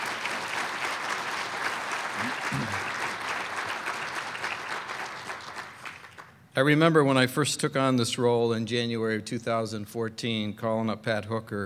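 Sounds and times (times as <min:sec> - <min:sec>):
sizable audience applauding: 0:00.0 - 0:06.4
speech: 0:02.2 - 0:02.9, 0:06.6 - 0:11.6.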